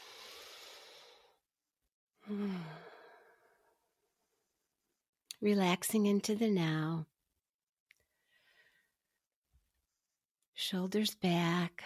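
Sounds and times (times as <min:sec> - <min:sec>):
deep breath taken while sitting up straight in a relaxation exercise: 0:00.0 - 0:01.4, 0:02.2 - 0:03.8, 0:08.1 - 0:09.1
speech: 0:02.3 - 0:02.8, 0:05.4 - 0:07.1, 0:10.6 - 0:11.8.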